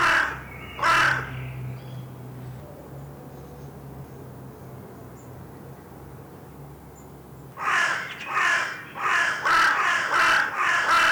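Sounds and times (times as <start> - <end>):
carrion crow Corvus corone cawing: 0.0 - 1.3, 7.6 - 11.1.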